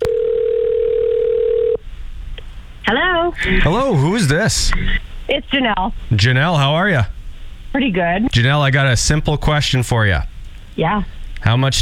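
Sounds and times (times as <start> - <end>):
telephone dial tone as a call is placed: 0.0 - 1.8
speech: 2.9 - 11.8.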